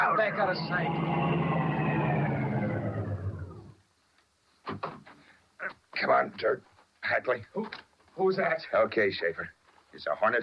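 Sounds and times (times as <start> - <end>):
speech: 0.0 - 2.0, 6.2 - 10.4
car engine roaring as it slows: 0.0 - 3.8.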